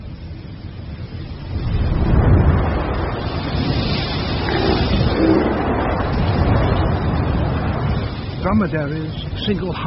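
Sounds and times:
steady loud roar of wind: 0:01.2 - 0:08.4
speech: 0:08.6 - 0:09.8.

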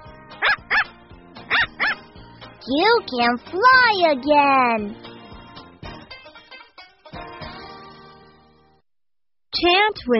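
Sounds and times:
dog barking: 0:00.4 - 0:00.9, 0:01.5 - 0:02.0
speech: 0:02.6 - 0:05.1, 0:09.6 - 0:10.1.

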